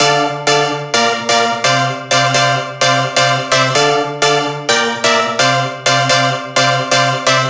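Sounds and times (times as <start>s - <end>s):
electro synth in D minor: 0.0s - 7.4s.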